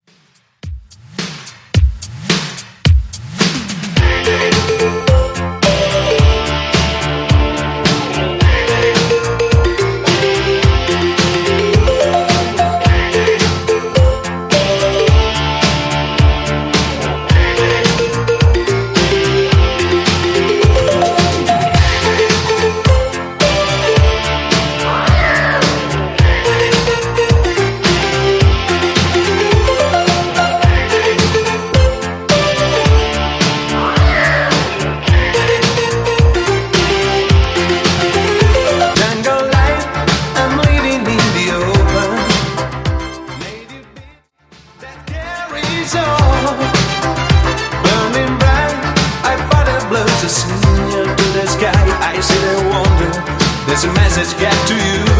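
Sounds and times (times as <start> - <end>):
1980s style beat at 108 BPM: 0.0 - 55.1.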